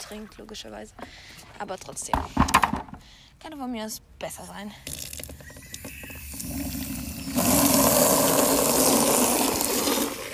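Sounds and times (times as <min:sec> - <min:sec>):
speech: 0:00.0 - 0:05.2
water gushing into a horses' water trough being refilled: 0:04.9 - 0:10.3.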